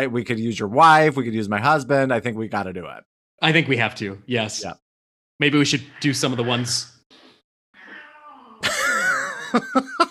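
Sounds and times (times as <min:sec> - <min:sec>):
speech: 0:00.0 - 0:04.8, 0:05.4 - 0:07.2, 0:09.5 - 0:10.0
cat meowing: 0:07.8 - 0:08.6
laughter: 0:08.6 - 0:10.0.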